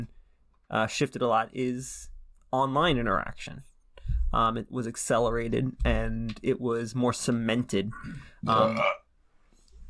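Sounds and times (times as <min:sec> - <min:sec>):
speech: 0:00.7 - 0:03.7, 0:04.3 - 0:09.0
loud throaty burp: 0:08.0 - 0:09.1.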